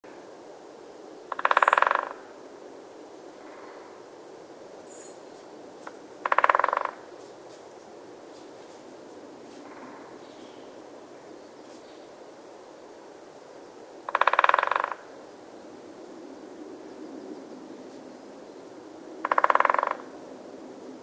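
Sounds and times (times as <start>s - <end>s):
great spotted woodpecker drumming: 1.3s - 2.3s, 5.8s - 7.2s, 14.1s - 15.2s, 19.2s - 20.2s.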